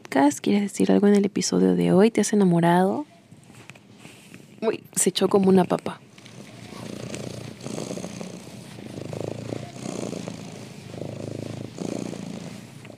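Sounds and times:
speech: 0:00.1 - 0:03.1, 0:04.6 - 0:06.0
cat purring: 0:05.4 - 0:12.9.

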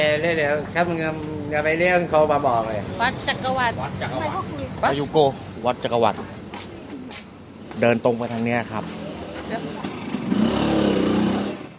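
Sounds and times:
speech: 0:00.0 - 0:06.4, 0:07.8 - 0:10.5
street noise: 0:00.0 - 0:11.7
motorcycle engine racing past: 0:08.8 - 0:11.7.

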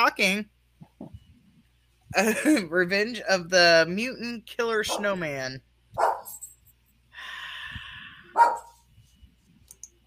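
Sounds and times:
speech: 0:00.0 - 0:00.6, 0:02.1 - 0:06.4, 0:08.4 - 0:08.6
dogs barking outside: 0:04.9 - 0:05.2, 0:06.0 - 0:06.4, 0:08.3 - 0:08.8.

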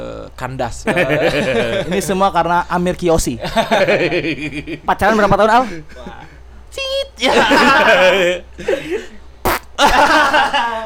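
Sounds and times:
speech: 0:00.4 - 0:09.2, 0:09.8 - 0:10.8
laughter: 0:00.9 - 0:02.2, 0:03.4 - 0:06.4, 0:07.2 - 0:09.2, 0:09.8 - 0:10.8
loud buzzing wavering farts: 0:09.4 - 0:09.8.

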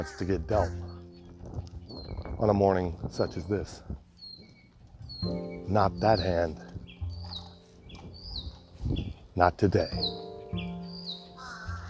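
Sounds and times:
speech: 0:00.0 - 0:00.9, 0:02.4 - 0:04.0, 0:05.2 - 0:06.6, 0:08.9 - 0:10.8
birds chirping outdoors: 0:00.0 - 0:11.8
harsh bird caws: 0:11.4 - 0:11.8.

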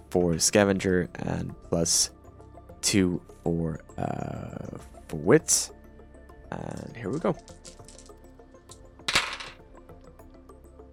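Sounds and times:
speech: 0:00.1 - 0:02.2, 0:02.8 - 0:05.8, 0:06.5 - 0:07.8
action die and two challenge dice clattering across a hard tabletop: 0:09.1 - 0:09.6.

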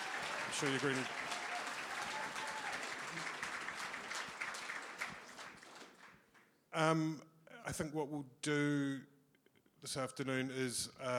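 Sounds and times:
audience applause for guests at a film talk: 0:00.0 - 0:06.1
speech: 0:00.5 - 0:01.3, 0:06.8 - 0:09.1, 0:09.8 - 0:11.1.

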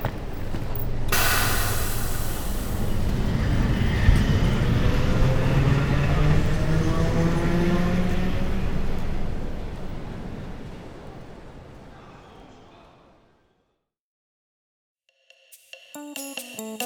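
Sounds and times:
train rumbling at a station platform: 0:00.0 - 0:12.6.

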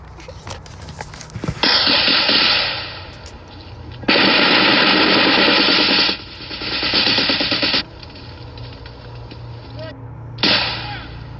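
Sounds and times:
gunfire in a jungle firefight: 0:01.6 - 0:03.1, 0:04.0 - 0:07.9, 0:10.4 - 0:11.2.

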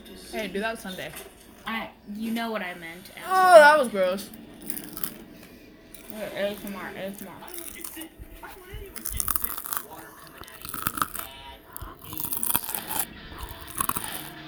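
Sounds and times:
speech: 0:00.3 - 0:04.8, 0:06.1 - 0:09.1
crunching and chewing of homemade really crunchy fries: 0:03.0 - 0:14.4
faint breathy sounds between bites: 0:04.6 - 0:14.3.

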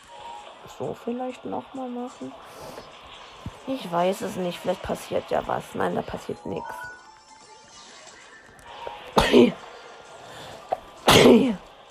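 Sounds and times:
speech: 0:00.7 - 0:02.9, 0:03.7 - 0:06.9, 0:09.4 - 0:09.6, 0:11.3 - 0:11.6
loud sharp explosive sneezes: 0:09.2 - 0:09.6, 0:11.0 - 0:11.6.

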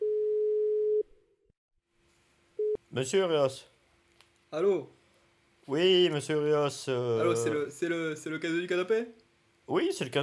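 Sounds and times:
telephone dial tone while placing a call: 0:00.0 - 0:01.0
speech: 0:02.9 - 0:03.7, 0:04.5 - 0:05.0, 0:05.7 - 0:10.2.

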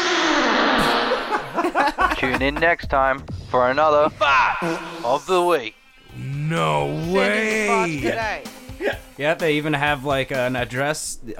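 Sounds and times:
fart played back through heavy reverb: 0:00.0 - 0:01.7
laughter: 0:00.8 - 0:03.0
speech: 0:02.2 - 0:11.3.

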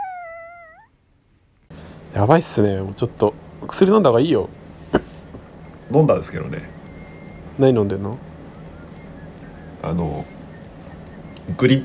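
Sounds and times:
sharp breathy vocal bursts: 0:01.7 - 0:07.6
sniffles: 0:01.7 - 0:11.6
speech: 0:02.3 - 0:04.6, 0:05.9 - 0:06.8, 0:07.6 - 0:08.3, 0:09.9 - 0:10.3, 0:11.6 - 0:11.8
person sneezing: 0:04.8 - 0:05.4.

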